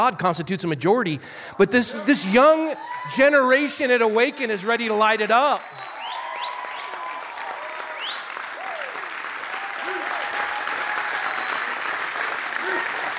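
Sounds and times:
speech: 0:00.0 - 0:05.9
large audience cheering with whoops: 0:02.0 - 0:03.6, 0:05.6 - 0:13.1
large audience clapping: 0:02.8 - 0:13.1
whistles from the audience: 0:05.6 - 0:07.0, 0:07.9 - 0:08.4, 0:09.9 - 0:12.6.

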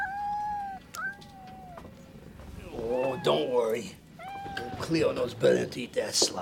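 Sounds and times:
little black cat meowing: 0:00.0 - 0:02.0, 0:02.6 - 0:05.0
speech: 0:02.9 - 0:04.0, 0:04.8 - 0:06.4.

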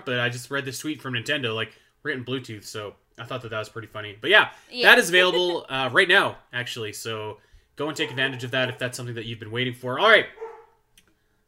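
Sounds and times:
speech: 0:00.0 - 0:10.4
dog bark from another room upstairs: 0:08.0 - 0:08.9, 0:10.4 - 0:10.7.

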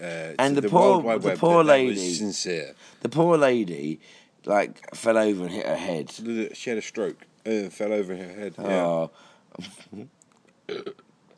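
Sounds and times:
speech: 0:00.0 - 0:11.0
guttural throaty burps: 0:10.7 - 0:11.1.

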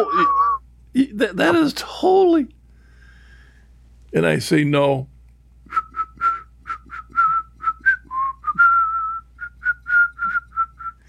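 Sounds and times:
speech: 0:00.0 - 0:00.4, 0:01.0 - 0:02.6, 0:04.1 - 0:05.1
person whistling an off-key tune: 0:00.0 - 0:00.6, 0:05.7 - 0:11.0.

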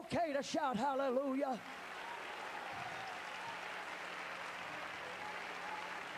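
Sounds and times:
speech: 0:00.1 - 0:01.8
audience clapping: 0:01.5 - 0:06.1.

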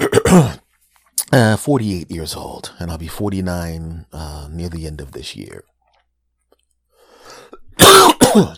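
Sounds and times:
cough: 0:00.0 - 0:00.6, 0:07.8 - 0:08.5
speech: 0:00.3 - 0:00.6, 0:01.3 - 0:05.7, 0:07.8 - 0:08.5
quiet breath: 0:06.9 - 0:07.6.

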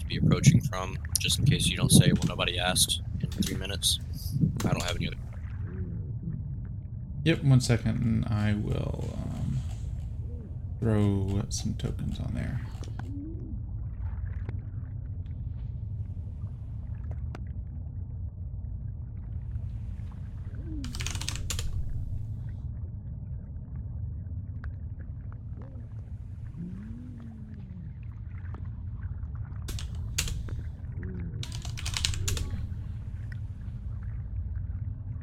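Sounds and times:
low steady hum: 0:00.0 - 0:35.2
speech: 0:00.1 - 0:05.3, 0:07.2 - 0:09.5, 0:10.8 - 0:12.8
typing on a computer keyboard to enter a search: 0:20.8 - 0:22.3, 0:29.7 - 0:30.7, 0:31.4 - 0:32.8.

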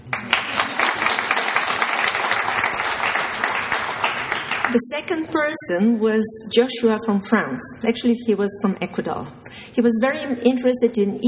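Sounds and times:
crowd applauding to honour an intern: 0:00.0 - 0:04.8
speech: 0:04.7 - 0:11.2.

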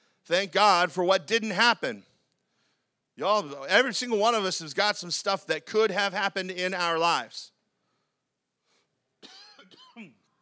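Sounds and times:
speech: 0:00.3 - 0:02.1, 0:03.2 - 0:07.5
person coughing: 0:09.2 - 0:10.3.

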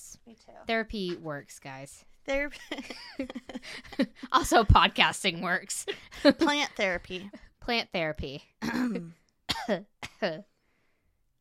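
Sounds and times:
speech: 0:00.3 - 0:10.5
laughter: 0:02.5 - 0:05.1, 0:05.7 - 0:07.4
person fake coughing: 0:08.6 - 0:10.4.

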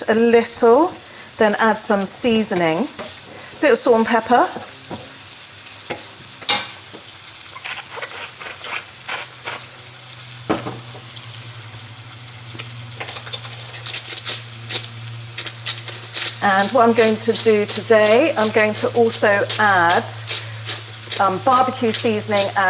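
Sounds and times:
aubergines frying in a pan: 0:00.0 - 0:22.6
speech: 0:00.1 - 0:05.0, 0:16.5 - 0:20.4, 0:21.2 - 0:22.6
stirring scrapes: 0:07.5 - 0:09.8, 0:13.1 - 0:22.6.

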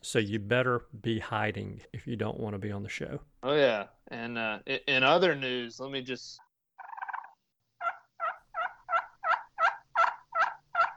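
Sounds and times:
speech: 0:00.0 - 0:06.4
turkey hen call made on a game call: 0:06.8 - 0:10.9.

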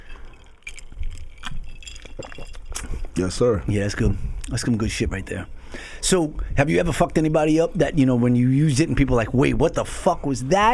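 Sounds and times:
glasses clinking in a toast: 0:00.0 - 0:03.2
speech: 0:03.2 - 0:10.7.

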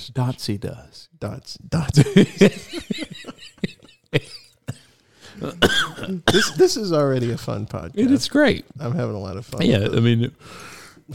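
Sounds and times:
speech: 0:00.0 - 0:04.4, 0:05.4 - 0:11.1
laughter: 0:02.0 - 0:06.2
coughing: 0:03.0 - 0:07.4
rough throat-clearing cough: 0:04.2 - 0:06.7.

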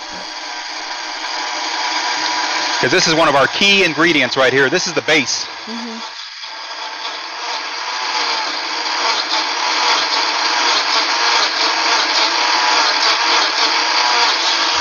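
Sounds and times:
blender running: 0:00.0 - 0:14.8
speech: 0:00.1 - 0:00.4, 0:02.8 - 0:06.1.

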